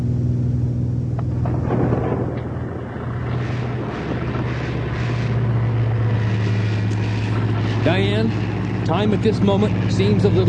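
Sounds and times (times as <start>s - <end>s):
propeller-engine drone in a small plane's cabin: 0.0s - 10.4s
sharp crackles of thunder: 1.1s - 10.4s
thunderstorm roaring and rumbling: 1.2s - 9.0s
speech: 8.0s - 10.4s.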